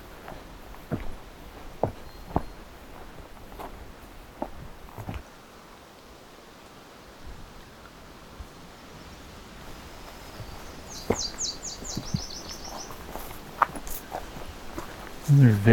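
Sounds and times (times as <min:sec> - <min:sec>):
steady crunching footsteps: 0:00.0 - 0:05.2, 0:09.6 - 0:15.7
outdoor noise: 0:00.0 - 0:15.7
myrtle warbler singing a trill of high notes: 0:10.5 - 0:13.0
speech: 0:15.3 - 0:15.7.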